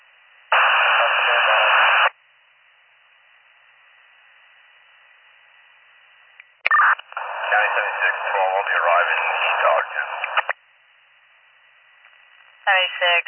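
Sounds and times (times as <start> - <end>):
radio static: 0.5 - 2.1, 6.7 - 10.6, 12.1 - 13.2.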